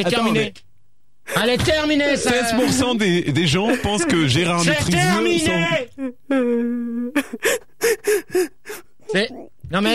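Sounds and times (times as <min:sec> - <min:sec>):
speech: 0:00.0 - 0:00.6, 0:01.3 - 0:08.5, 0:09.1 - 0:09.9
person crying with quavering wail and gasping sobs: 0:05.2 - 0:09.5.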